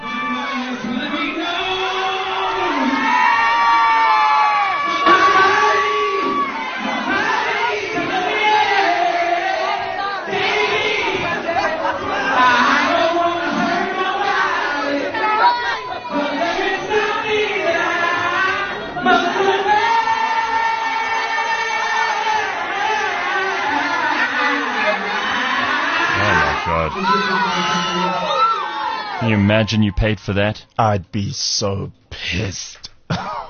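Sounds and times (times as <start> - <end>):
nightclub crowd of mostly young women cheering at a live performance: 0.0 - 30.2
speech: 29.6 - 32.8.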